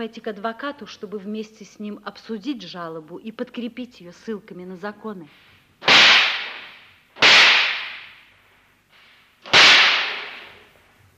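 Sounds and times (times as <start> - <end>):
speech: 0.0 - 6.0
loud sharp gunshots: 5.8 - 8.2, 9.4 - 10.6.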